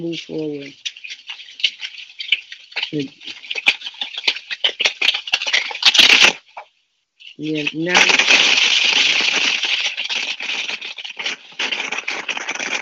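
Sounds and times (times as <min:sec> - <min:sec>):
voice fragments breaking through phone line: 0:00.0 - 0:00.8, 0:02.8 - 0:03.3, 0:07.3 - 0:08.4
speech: 0:00.0 - 0:00.9, 0:02.9 - 0:03.4, 0:07.4 - 0:09.1
harsh crackling static on phone line: 0:00.0 - 0:12.7.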